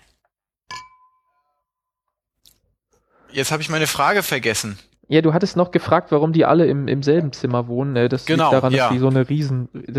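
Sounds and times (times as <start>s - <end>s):
glasses clinking during a toast: 0.7s - 1.6s
speech: 3.3s - 9.9s.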